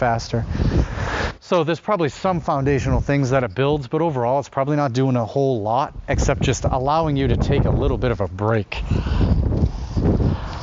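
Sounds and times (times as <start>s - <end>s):
strong gust of wind buffeting the microphone: 0.0s - 1.4s, 2.2s - 3.9s, 5.7s - 10.6s
speech: 0.0s - 9.4s.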